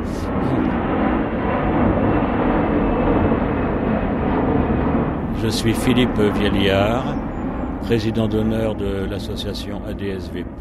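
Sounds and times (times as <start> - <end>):
jet airliner passing overhead: 0.0 - 10.6
speech: 5.4 - 7.2, 7.8 - 10.6.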